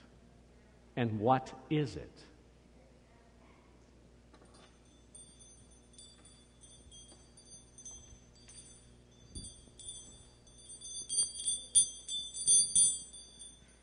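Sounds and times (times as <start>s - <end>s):
speech: 1.0s - 2.3s
Christmas tree keys jingling while shaken: 4.5s - 13.8s.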